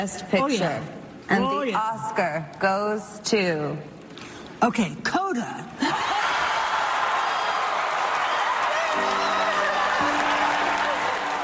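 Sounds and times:
speech: 0:00.0 - 0:04.0, 0:04.6 - 0:06.1
large audience applause at awards ceremony: 0:05.9 - 0:11.4.

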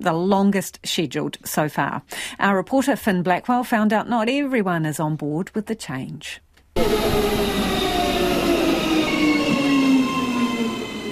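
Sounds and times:
speech: 0:00.0 - 0:07.7
train rolling through a train station: 0:06.8 - 0:11.1.

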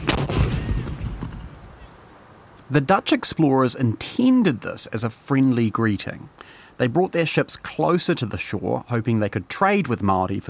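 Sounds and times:
cannon shot: 0:00.0 - 0:01.6
speech: 0:02.7 - 0:10.4.

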